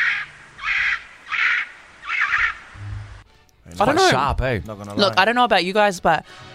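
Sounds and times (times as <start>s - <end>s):
kakapo squawking: 0.0s - 3.1s
speech: 3.8s - 6.5s.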